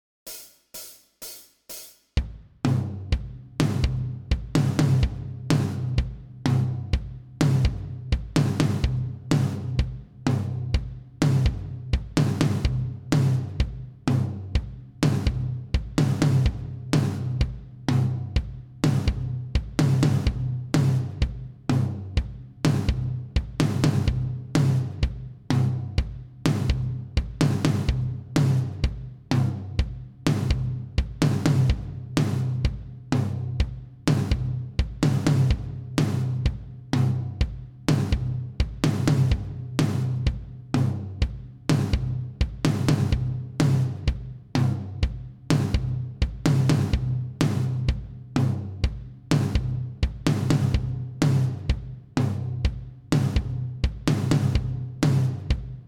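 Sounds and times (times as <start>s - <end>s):
bass at 126 bpm: 2.2s - 55.8s.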